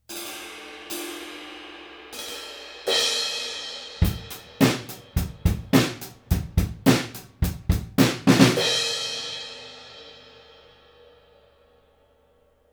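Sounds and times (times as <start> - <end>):
drum kit recorded with Schoeps CMC6MK2S in front of kit: 2.2 - 10.2.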